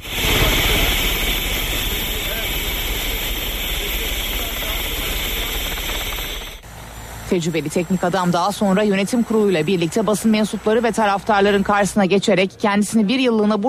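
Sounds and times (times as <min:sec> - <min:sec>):
helicopter roaring as it arrives at the Özüce facilities in Bursa: 0:00.0 - 0:11.6
speech: 0:07.3 - 0:13.6.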